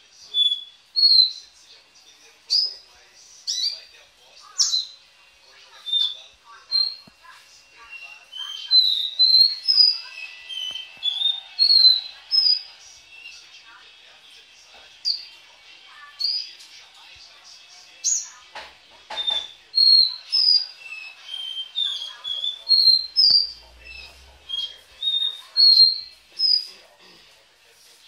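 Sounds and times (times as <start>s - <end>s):
Belgian canary singing: 0.2s - 1.7s, 2.5s - 13.9s, 15.0s - 16.8s, 17.9s - 27.2s.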